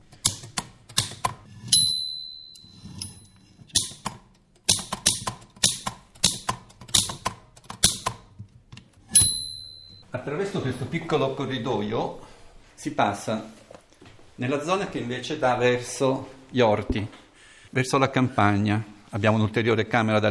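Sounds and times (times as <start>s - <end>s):
small manual typewriter bell dinging: 1.6s - 3.9s, 9.1s - 10.0s
small manual typewriter key strikes clacking: 3.7s - 8.5s
speech: 10.2s - 13.7s, 14.4s - 20.2s.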